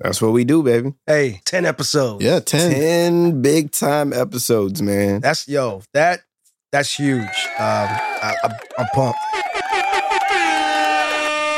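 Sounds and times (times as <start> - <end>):
speech: 0.0 - 9.4
loud blaring air horn blasts: 9.7 - 11.5.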